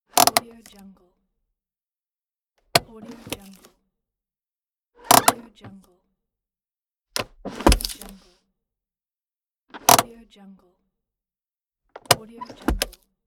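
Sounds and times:
handbrake: 0:00.2 - 0:00.4, 0:05.1 - 0:05.4, 0:07.2 - 0:08.2, 0:09.7 - 0:10.1, 0:12.0 - 0:13.0.

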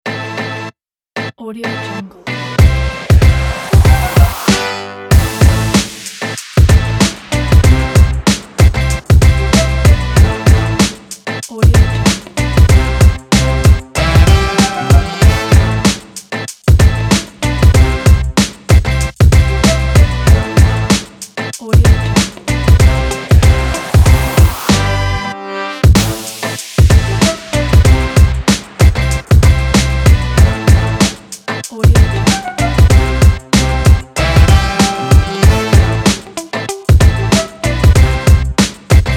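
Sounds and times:
energetic hip hop beat: 0:02.4 - 0:25.2, 0:25.8 - 0:39.1.

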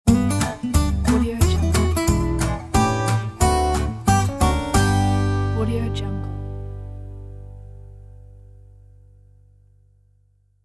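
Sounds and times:
upbeat happy country swing transition: 0:00.0 - 0:07.9.

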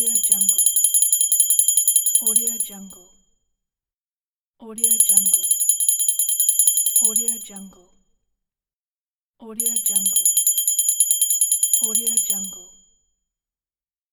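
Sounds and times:
small ringing bell: 0:00.2 - 0:02.5, 0:05.0 - 0:07.3, 0:09.8 - 0:12.6.

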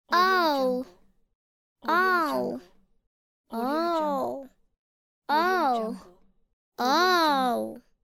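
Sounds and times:
little girl voice: 0:00.1 - 0:00.9, 0:01.8 - 0:02.6, 0:03.5 - 0:04.5, 0:05.3 - 0:06.0, 0:06.8 - 0:07.8.

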